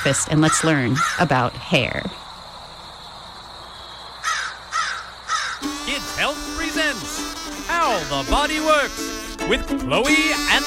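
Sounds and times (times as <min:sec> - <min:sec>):
speech: 0:00.0 - 0:02.2, 0:08.0 - 0:10.6
crows cawing outdoors: 0:00.0 - 0:05.9.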